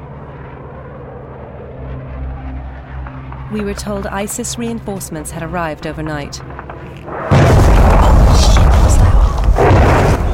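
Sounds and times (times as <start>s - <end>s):
speech: 3.5s - 7.4s
very loud explosion during a battle between Kurdish fighters and ISIS: 7.1s - 10.3s.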